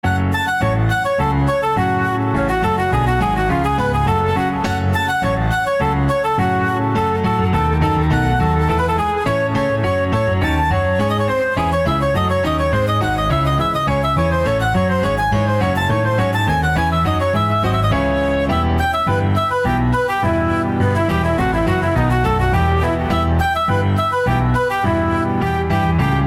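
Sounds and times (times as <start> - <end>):
flute: 0.0 - 26.2
piano: 0.0 - 26.2.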